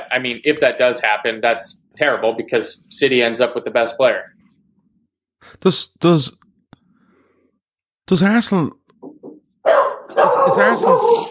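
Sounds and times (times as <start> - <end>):
speech: 0.1 - 4.3, 5.4 - 6.4, 8.1 - 8.8, 10.2 - 11.3
dog barking loudly: 9.6 - 11.3.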